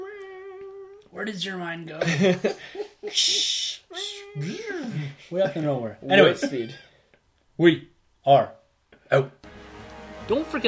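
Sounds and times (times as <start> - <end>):
person imitating a frightened cat with yowls, hiss and wail: 0.0 - 1.1, 3.1 - 5.1
speech: 1.2 - 6.9, 7.6 - 9.4, 10.3 - 10.6
laughter: 2.0 - 3.5.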